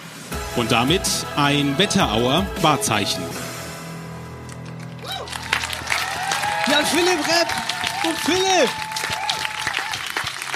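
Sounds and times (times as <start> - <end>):
speech: 0.6 - 3.4, 6.8 - 8.8
audience applause: 4.6 - 10.5.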